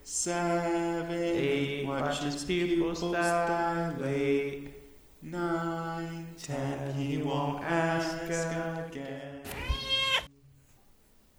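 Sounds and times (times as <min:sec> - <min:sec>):
speech: 0:00.2 - 0:09.3
cat meowing in a house: 0:09.5 - 0:10.3.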